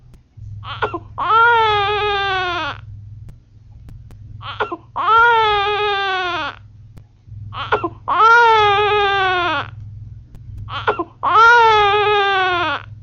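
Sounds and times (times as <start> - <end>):
low steady hum: 0.0 - 13.0
hungry infant crying loudly: 0.6 - 2.8, 4.4 - 6.6, 7.6 - 9.8, 10.7 - 12.9.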